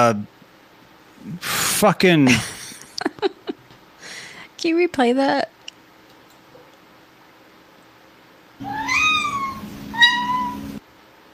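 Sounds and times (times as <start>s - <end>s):
speech: 0.0s - 0.4s, 1.2s - 2.5s, 4.6s - 5.6s
steady low hum: 0.0s - 11.3s
black cat meowing: 8.6s - 10.8s.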